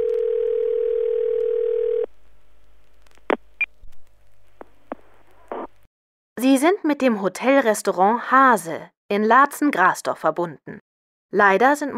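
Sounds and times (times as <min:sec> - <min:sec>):
telephone line tone: 0:00.0 - 0:02.1
speech: 0:06.4 - 0:11.9.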